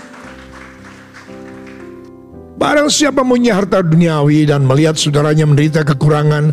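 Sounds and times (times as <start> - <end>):
crowd applauding: 0.0 - 2.1
speech: 2.6 - 6.5.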